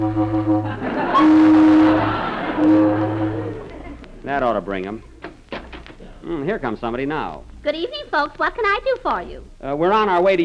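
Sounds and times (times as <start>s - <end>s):
speech: 0.0s - 1.4s, 4.5s - 5.2s, 6.3s - 10.4s
car horn blaring at a roadside auto court: 0.0s - 3.6s
laughter: 0.6s - 4.4s.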